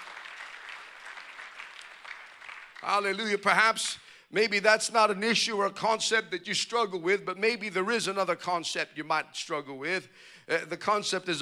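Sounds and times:
congregation clapping hands in praise during a church worship service: 0:00.0 - 0:03.6
speech: 0:02.8 - 0:11.3.

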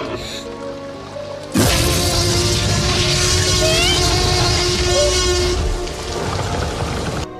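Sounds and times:
movie T-Rex roar blended from animal growls: 0:01.7 - 0:07.3.

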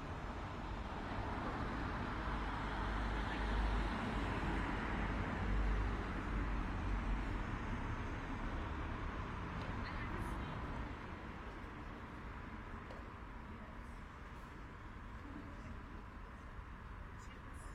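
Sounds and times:
cars driving past on a road at night: 0:00.3 - 0:13.3.

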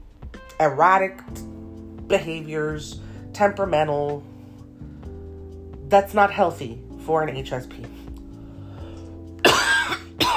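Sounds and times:
speech: 0:00.6 - 0:01.5, 0:02.1 - 0:04.3, 0:05.9 - 0:08.0
person coughing: 0:09.4 - 0:10.3.

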